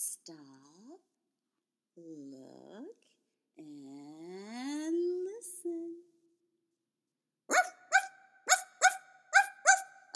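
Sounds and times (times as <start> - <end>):
speech: 0.3 - 0.6, 2.0 - 3.0
dog barking: 7.5 - 10.0.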